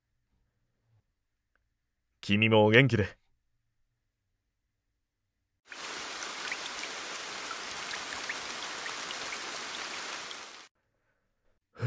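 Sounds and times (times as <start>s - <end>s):
speech: 2.3s - 3.2s
steady rain falling: 5.7s - 10.7s.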